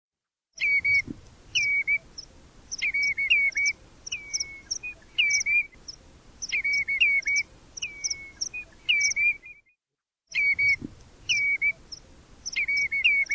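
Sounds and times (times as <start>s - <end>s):
bird singing patterned phrase of clipped notes and falling whistle: 0.6s - 1.0s, 1.6s - 2.0s, 2.8s - 5.7s, 6.5s - 9.7s, 10.3s - 11.8s, 12.5s - 13.3s.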